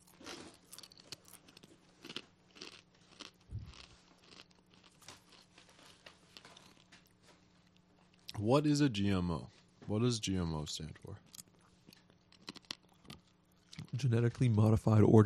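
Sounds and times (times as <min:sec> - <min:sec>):
everything deli style pretzel crisps being chewed: 0:00.0 - 0:07.2, 0:11.2 - 0:14.4
speech: 0:08.4 - 0:11.3, 0:14.0 - 0:15.2.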